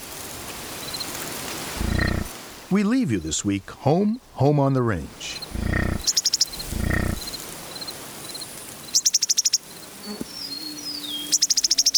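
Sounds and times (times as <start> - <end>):
rapid pulsing insect chirps on prairie grasslands: 0.0 - 2.6, 5.3 - 11.9
soft steady wind-like hiss on windswept prairie: 0.0 - 4.4, 5.0 - 11.9
faint calls: 0.8 - 2.4, 5.1 - 11.9
speech: 2.7 - 5.7.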